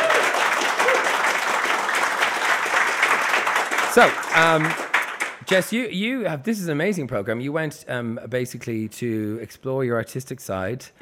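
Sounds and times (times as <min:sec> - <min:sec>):
live audience applauding for the guests: 0:00.0 - 0:05.6
speech: 0:04.0 - 0:04.8, 0:05.5 - 0:11.0.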